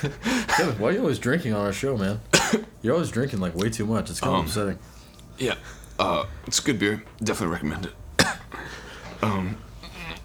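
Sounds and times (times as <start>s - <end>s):
short rough gravelly throat-clearing cough: 0.0s - 0.8s, 2.3s - 2.7s, 8.2s - 10.2s
speech: 0.0s - 8.0s, 9.2s - 9.6s
quieter breathy throat noises: 5.0s - 6.5s, 8.2s - 10.2s.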